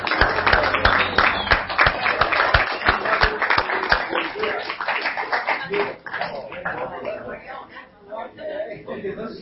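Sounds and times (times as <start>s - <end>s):
crowd applauding: 0.0s - 7.0s
voices murmuring and chattering: 0.0s - 9.4s.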